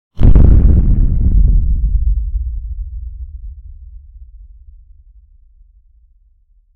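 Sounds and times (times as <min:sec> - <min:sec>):
boom impact on earth: 0:00.2 - 0:05.2.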